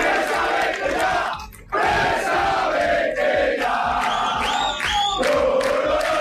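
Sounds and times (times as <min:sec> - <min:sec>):
football fans protesting at their stadium, chanting and shouting: 0:00.0 - 0:06.1
rising whistle-like tones from football fans: 0:04.0 - 0:05.5.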